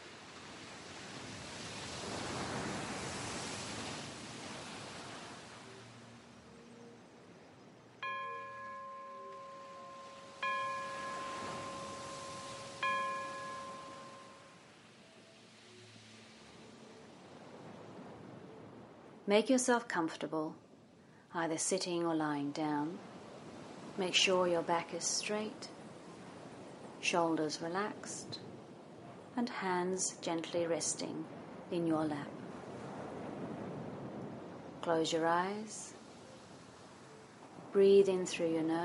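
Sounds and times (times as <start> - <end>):
ocean waves washing in slow hissing surf: 0.0 - 19.8, 21.3 - 38.8
bell-like chimes over the water: 8.0 - 14.6
speech: 19.3 - 20.6, 21.3 - 23.2, 24.0 - 25.8, 27.0 - 28.5, 29.4 - 32.4, 34.9 - 36.0, 37.7 - 38.8.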